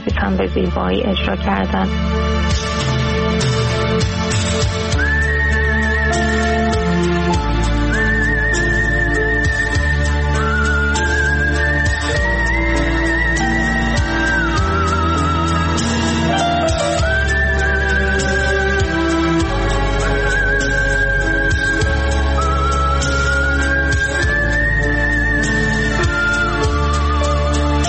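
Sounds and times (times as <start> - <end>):
full instrumental backing music: 0.0 - 27.8
speech: 0.1 - 5.0
person whistling a clear melody: 4.9 - 27.8.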